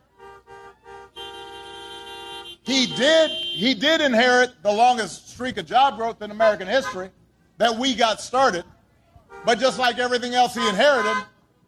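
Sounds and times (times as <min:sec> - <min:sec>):
car horns honking: 0:00.0 - 0:04.5, 0:06.5 - 0:07.2, 0:09.2 - 0:11.4
speech: 0:02.6 - 0:08.7, 0:09.4 - 0:11.3.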